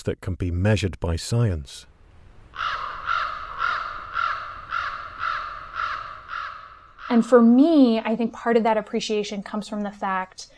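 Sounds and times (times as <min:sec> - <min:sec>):
speech: 0:00.0 - 0:01.9, 0:02.6 - 0:02.9, 0:07.1 - 0:10.5
raven giving harsh croaking calls: 0:02.4 - 0:08.0.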